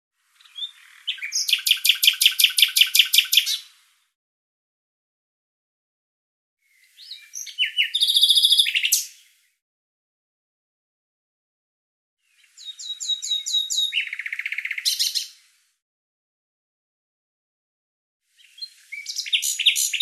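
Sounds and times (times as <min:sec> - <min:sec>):
bird calling in rapid high chirps: 0:00.4 - 0:03.7, 0:07.0 - 0:09.2, 0:12.4 - 0:15.4, 0:18.4 - 0:20.0.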